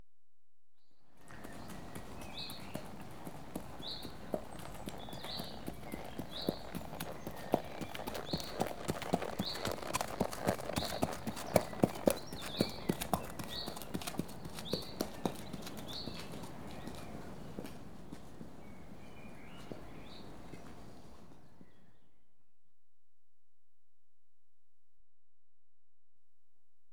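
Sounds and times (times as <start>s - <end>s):
one unshod horse passing at walk: 1.2s - 21.7s.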